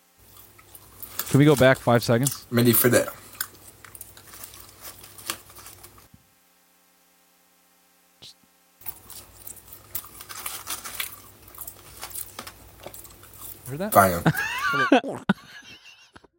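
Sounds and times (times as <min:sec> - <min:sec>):
man chewing a french fry: 0:00.2 - 0:06.1, 0:08.8 - 0:14.2
speech: 0:01.3 - 0:03.2, 0:13.8 - 0:15.4
laughter: 0:14.0 - 0:16.3.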